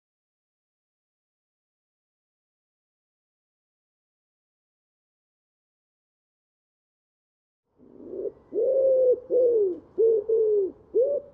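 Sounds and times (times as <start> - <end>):
common wood pigeon cooing: 7.8 - 11.3.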